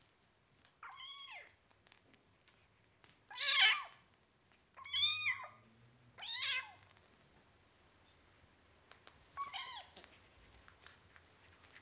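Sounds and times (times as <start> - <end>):
four-week-old kitten meowing: 3.3 - 4.0, 4.8 - 5.6, 6.2 - 6.8, 9.4 - 10.0.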